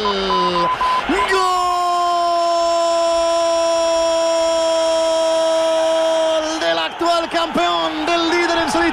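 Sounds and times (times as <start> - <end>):
football stadium crowd roaring, shouting and protesting: 0.0 - 8.9.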